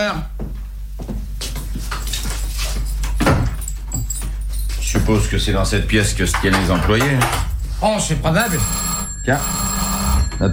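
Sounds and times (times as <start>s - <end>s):
speech: 0.0s - 0.4s, 4.9s - 9.7s
low steady hum: 0.0s - 10.5s
keys jingling: 1.9s - 5.0s.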